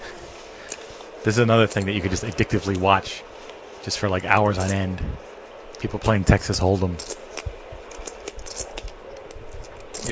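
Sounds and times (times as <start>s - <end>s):
speech: 1.2s - 7.2s
plastic poker chips being shuffled: 7.0s - 10.1s.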